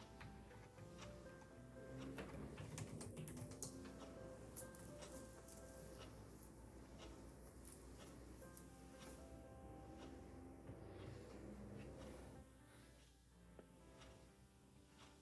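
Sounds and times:
keyboard typing: 0:00.0 - 0:09.3
faint ticking clock: 0:00.0 - 0:15.2
soft lo-fi instrumental music: 0:00.0 - 0:15.2.

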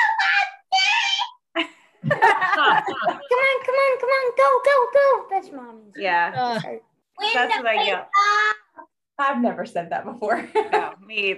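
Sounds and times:
person screaming: 0:00.0 - 0:01.4
laughter: 0:01.6 - 0:03.5
speech: 0:04.4 - 0:08.4, 0:09.2 - 0:11.3.

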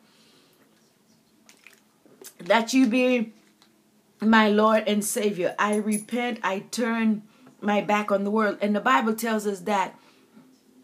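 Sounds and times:
faint hum: 0:00.0 - 0:10.8
person sipping and gulping water: 0:01.5 - 0:02.4
speech: 0:02.2 - 0:03.4, 0:04.2 - 0:10.0.

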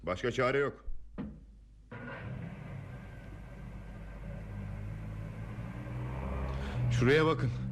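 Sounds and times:
speech: 0:00.0 - 0:00.9, 0:07.0 - 0:07.7
car engine idling while pulling over in thick fog: 0:01.9 - 0:07.7.

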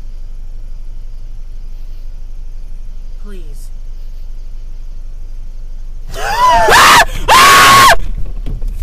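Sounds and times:
woman screaming in fright: 0:06.1 - 0:08.0.

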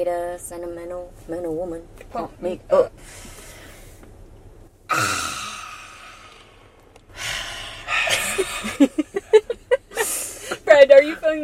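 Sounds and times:
speech: 0:00.0 - 0:03.3, 0:10.8 - 0:11.4
deep breathing exercise with short sharp rhythmic exhales: 0:03.0 - 0:04.0, 0:04.9 - 0:08.8, 0:09.9 - 0:10.7.

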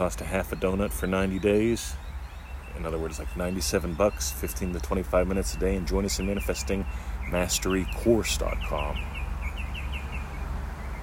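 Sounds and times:
speech: 0:00.0 - 0:02.0, 0:02.8 - 0:09.1
bird chirping: 0:00.0 - 0:11.0.

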